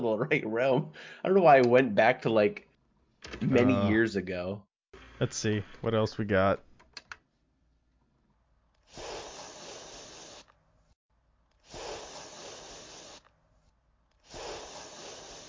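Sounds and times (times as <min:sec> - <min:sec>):
speech: 0:00.0 - 0:06.7
aerosol can spraying: 0:08.9 - 0:10.6, 0:11.6 - 0:13.3, 0:14.2 - 0:15.4.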